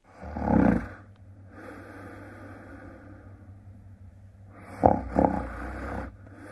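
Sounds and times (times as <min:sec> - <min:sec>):
person breathing steadily while asleep: 0:00.0 - 0:06.5
person snoring: 0:00.1 - 0:03.1, 0:04.5 - 0:06.5.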